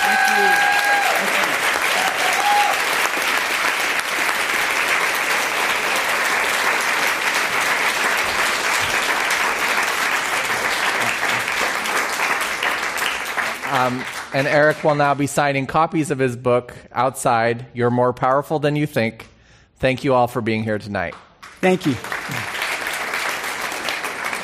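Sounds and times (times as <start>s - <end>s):
whistles and cheers: 0.0s - 3.0s
large audience applause: 0.0s - 15.0s, 21.4s - 24.4s
speech: 13.8s - 22.6s.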